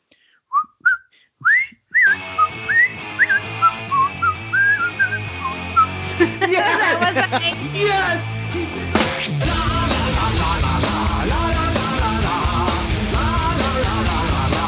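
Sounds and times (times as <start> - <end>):
person whistling a lilting tune: 0.5 - 6.0
steady music: 2.1 - 14.6
laughter: 6.0 - 7.8
speech: 7.0 - 9.1.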